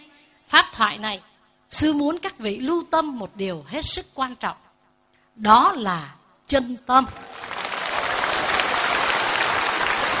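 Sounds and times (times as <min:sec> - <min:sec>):
speech: 0:00.8 - 0:04.6, 0:05.4 - 0:07.4
audience applause at a dharma talk: 0:07.1 - 0:10.1.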